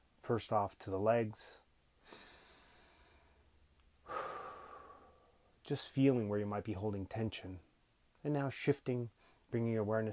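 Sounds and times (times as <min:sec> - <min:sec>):
speech: 0:00.3 - 0:02.3, 0:05.7 - 0:10.1
slow soft breathing during meditation: 0:02.0 - 0:05.6.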